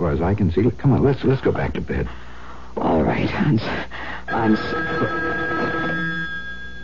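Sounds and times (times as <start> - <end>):
speech: 0.0 - 5.4
telephone ringing with a high electronic trill: 4.3 - 6.8.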